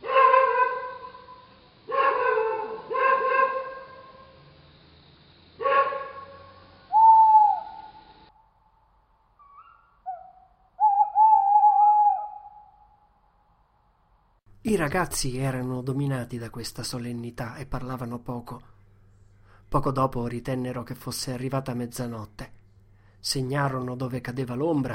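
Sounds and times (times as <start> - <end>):
distant dog giving mournful drawn-out barks: 0.0 - 4.2, 5.6 - 7.7
owl hooting: 0.0 - 4.4, 5.6 - 8.4, 9.4 - 13.1
speech: 14.7 - 18.7, 19.7 - 22.5, 23.2 - 24.9.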